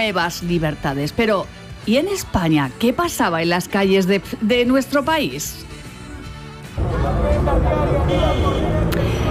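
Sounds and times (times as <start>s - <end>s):
speech: 0.0s - 5.8s, 6.8s - 8.9s
busy city street traffic with taxis: 6.8s - 9.2s
indistinct murmuring voices: 6.8s - 9.2s.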